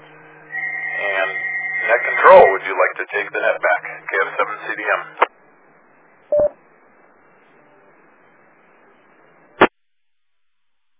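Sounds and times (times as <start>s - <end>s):
sharp burst of radio static: 0.6s - 5.2s
faint radio hiss: 0.9s - 10.9s
speech: 2.7s - 5.3s
DTMF touch-tone dialing beep on a radio repeater: 6.3s - 6.5s.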